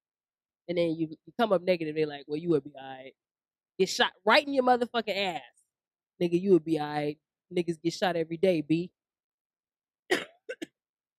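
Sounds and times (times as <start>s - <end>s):
speech: 0.7s - 5.6s, 6.2s - 9.0s
person coughing at a microphone: 10.1s - 10.8s.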